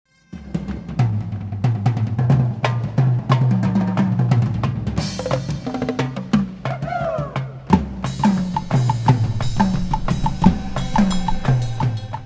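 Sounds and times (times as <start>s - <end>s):
bagad percussion solo: 0.2s - 12.2s.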